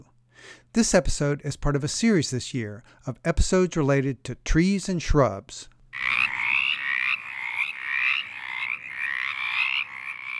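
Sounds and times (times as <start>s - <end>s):
speech: 0.6s - 6.1s
mountain chorus frogs calling: 5.9s - 10.3s.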